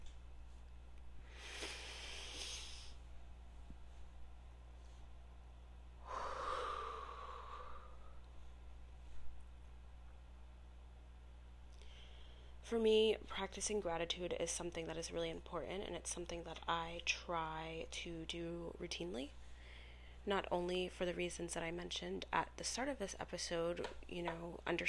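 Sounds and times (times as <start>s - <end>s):
faint steady hum: 0.0s - 24.8s
person taking a slow deep breath: 1.2s - 3.0s, 6.0s - 8.2s
speech: 12.7s - 19.4s, 20.2s - 24.8s.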